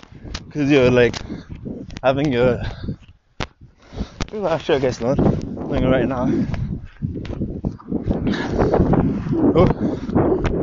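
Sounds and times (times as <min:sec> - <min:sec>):
wind buffeting a microphone: 0:00.0 - 0:10.6
speech: 0:00.5 - 0:02.8, 0:04.4 - 0:07.3, 0:08.6 - 0:10.6.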